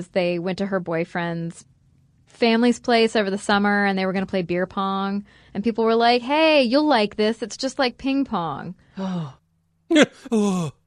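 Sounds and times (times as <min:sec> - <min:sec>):
speech: 0:00.0 - 0:01.7, 0:02.3 - 0:10.8
person gasping in surprise: 0:09.0 - 0:10.7
drawn-out voiced exclamation: 0:09.9 - 0:10.7.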